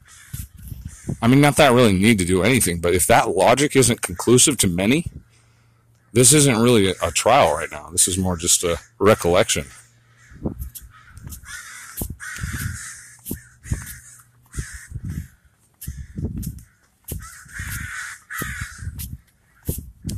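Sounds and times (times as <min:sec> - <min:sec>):
flock of crows cawing: 0:00.0 - 0:01.2, 0:05.2 - 0:19.9
speech: 0:01.1 - 0:05.3, 0:06.1 - 0:09.8.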